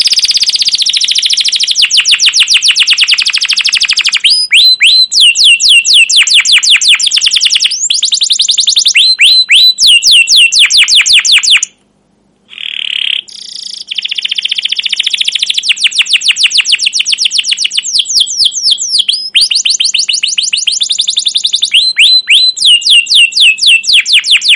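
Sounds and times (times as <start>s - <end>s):
canary singing long excited phrases: 0.0s - 11.8s, 12.5s - 24.5s.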